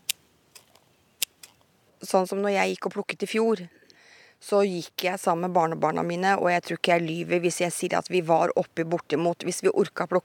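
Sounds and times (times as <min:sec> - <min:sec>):
scissors snipping slugs: 0:00.0 - 0:01.6
speech: 0:02.0 - 0:03.8, 0:04.4 - 0:10.2.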